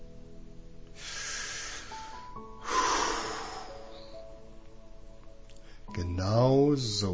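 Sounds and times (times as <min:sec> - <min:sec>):
deep breath in and out: 0:00.9 - 0:04.4
speech: 0:06.2 - 0:07.1.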